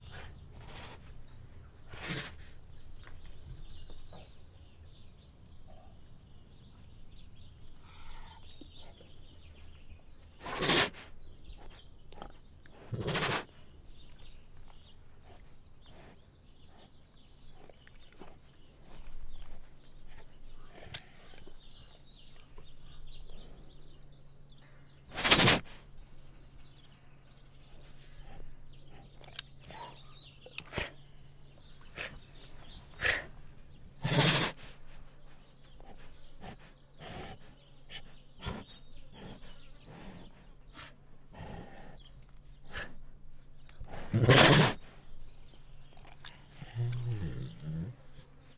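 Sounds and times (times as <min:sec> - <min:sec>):
female Bengal tiger snorting hard and loudly: 0:00.0 - 0:02.8, 0:10.4 - 0:13.6, 0:25.1 - 0:25.8, 0:27.7 - 0:43.1, 0:43.8 - 0:45.2, 0:45.8 - 0:48.2.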